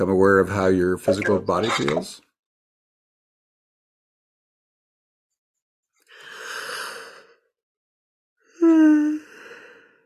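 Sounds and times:
speech: 0.0 - 2.2
person yawning: 8.6 - 9.3.

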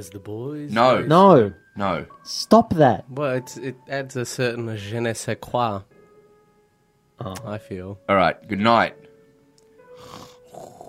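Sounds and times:
speech: 0.0 - 5.9, 7.2 - 9.0
person snoring while asleep: 9.9 - 10.8.

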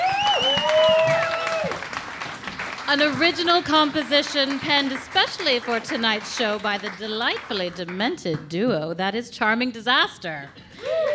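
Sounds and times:
held whoop or cheer: 0.0 - 1.8, 10.8 - 11.1
audience clapping: 0.0 - 8.5
speech: 2.9 - 11.0.

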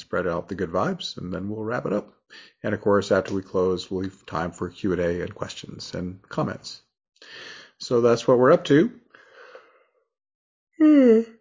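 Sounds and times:
speech: 0.1 - 9.0, 10.8 - 11.3
person yawning: 10.8 - 11.3.

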